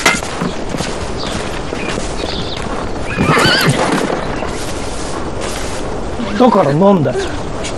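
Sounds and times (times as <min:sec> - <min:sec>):
horse hooves clip-clopping: 0:00.0 - 0:07.7
horse neighing: 0:03.1 - 0:04.1
speech: 0:06.4 - 0:07.4.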